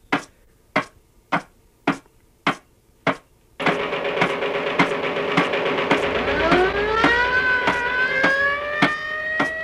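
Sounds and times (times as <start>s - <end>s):
sharp bangs: 0.1s - 9.6s
machine-gun bursts played from a record on a turntable: 3.6s - 8.3s
dense roar: 3.7s - 9.6s
loud siren winding upward in pitch: 6.0s - 9.6s
police whistle blown by mouth: 6.3s - 9.6s.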